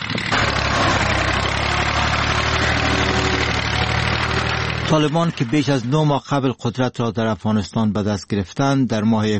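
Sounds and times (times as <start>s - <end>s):
tractor engine running in a poppy field: 0.0s - 7.7s
speech: 4.9s - 9.3s.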